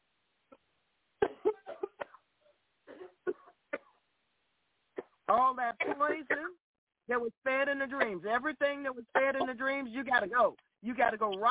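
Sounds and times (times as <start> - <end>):
person coughing repeatedly in sharp bursts: 1.2 - 2.2, 2.9 - 4.0, 5.0 - 6.5, 9.2 - 10.3
speech: 5.3 - 11.4.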